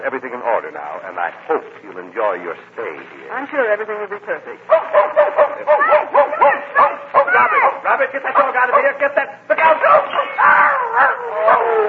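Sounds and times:
speech: 0.0 - 6.8, 7.4 - 11.8
small dog barking and yipping: 4.7 - 7.8, 9.9 - 11.6
excited voices: 4.7 - 11.8.

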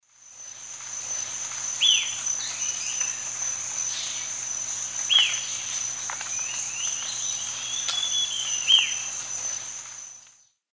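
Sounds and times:
Dixiphia pipra song or call in South America Eastern Lowlands: 1.8 - 3.3, 5.0 - 9.7.

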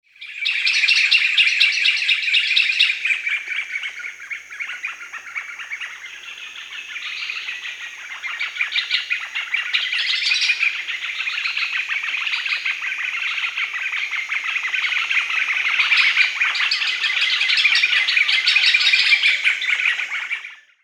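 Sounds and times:
White-fronted Nunbird Monasa morphoeus calling in Peru: 0.2 - 20.8.

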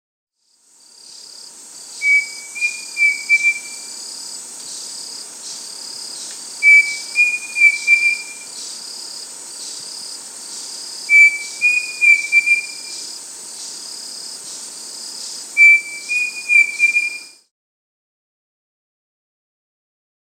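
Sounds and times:
Pavonine Cuckoo Dromococcyx pavoninus in Peru: 2.0 - 3.9, 6.6 - 8.5, 11.1 - 13.0, 15.6 - 17.4.

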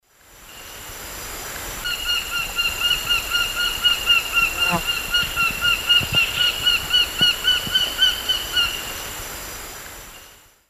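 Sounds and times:
Falco deiroleucus flight calls in the Eastern Lowlands of South America: 2.6 - 8.8.

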